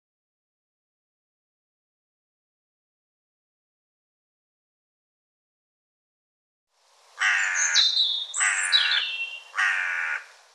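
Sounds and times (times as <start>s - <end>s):
bird calling harsh grating notes: 7.2s - 10.3s.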